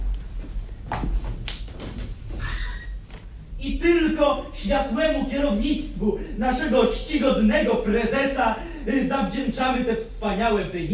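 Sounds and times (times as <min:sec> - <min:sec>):
soft thuds: 0:00.0 - 0:03.4
door being eased open with a squeaky creak: 0:01.4 - 0:03.3
speech: 0:03.7 - 0:10.9.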